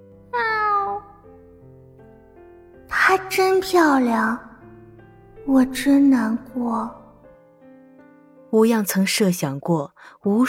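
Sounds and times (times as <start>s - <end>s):
white cat meowing softly: 0.3s - 1.3s
speech: 3.1s - 4.5s, 5.5s - 7.0s, 8.5s - 10.4s.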